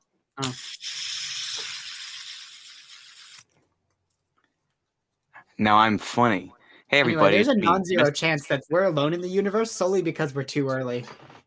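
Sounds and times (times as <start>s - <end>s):
speech: 0.4s - 1.7s, 5.6s - 11.3s
fidget spinner whirring with hissing rush: 0.8s - 3.6s.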